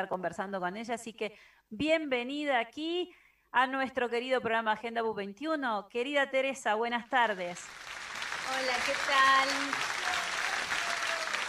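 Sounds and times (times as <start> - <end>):
speech: 0.0 - 10.2
crowd applause played by the studio operator: 7.5 - 11.4.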